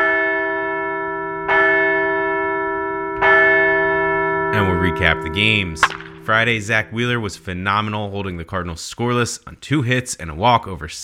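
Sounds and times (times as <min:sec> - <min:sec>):
large resonant bell struck: 0:00.0 - 0:08.5
speech: 0:04.9 - 0:11.0.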